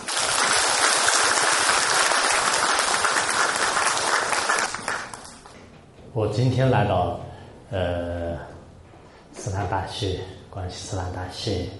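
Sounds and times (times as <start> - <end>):
applause from a large audience welcoming a speaker: 0.0 - 5.5
speech: 6.2 - 8.6, 9.4 - 11.7.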